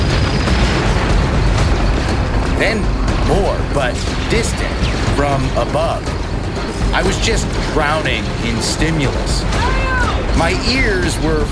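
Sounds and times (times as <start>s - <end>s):
deep heavy explosion boom: 0.0s - 10.6s
speech: 2.6s - 6.2s, 6.9s - 11.5s.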